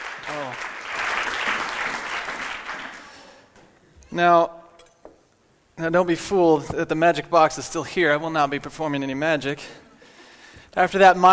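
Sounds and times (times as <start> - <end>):
audience applauding: 0.0 - 3.4
speech: 4.1 - 4.6, 5.8 - 9.8, 10.8 - 11.3.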